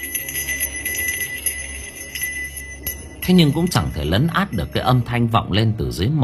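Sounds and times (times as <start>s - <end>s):
handbell ringing with bright jingling metallic clangs: 0.0s - 5.4s
speech: 3.2s - 6.2s.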